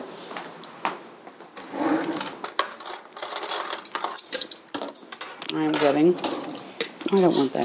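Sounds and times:
metal cutlery clinking as a fork is taken out: 2.1 - 7.6
speech: 5.6 - 6.4, 7.1 - 7.6.

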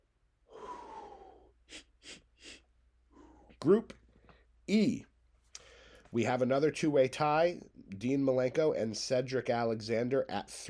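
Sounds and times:
heavy wheezy breathing: 0.5 - 3.6, 5.5 - 6.2
speech: 3.6 - 4.0, 4.7 - 5.1, 6.1 - 10.6.

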